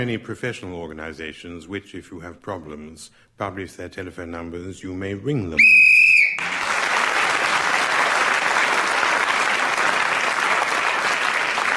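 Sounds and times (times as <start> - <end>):
speech: 0.0 - 5.8
short sharp whistle blast ending a round of a game: 5.6 - 6.4
crowd applauding: 6.3 - 11.7.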